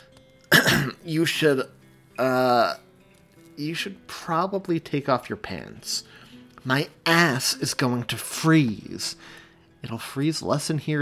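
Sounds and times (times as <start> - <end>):
man awkwardly clearing his throat: 0.5 - 1.0
speech: 1.0 - 2.8, 3.6 - 10.9.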